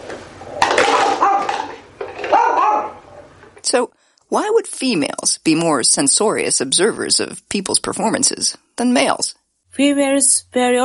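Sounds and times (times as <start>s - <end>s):
small female dog barking at containers in a study: 0.9s - 3.1s
speech: 3.7s - 10.8s.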